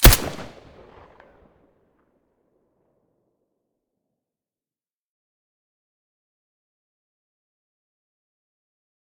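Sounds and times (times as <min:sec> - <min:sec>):
Colt 1911 pistol shot with silencer: 0:00.0 - 0:01.1.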